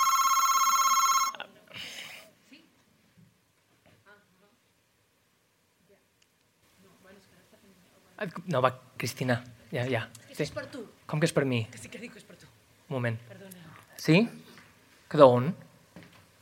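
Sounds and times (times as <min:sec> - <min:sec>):
loud bright telephone ring: 0:00.0 - 0:01.4
speech: 0:08.2 - 0:14.5, 0:15.1 - 0:15.7.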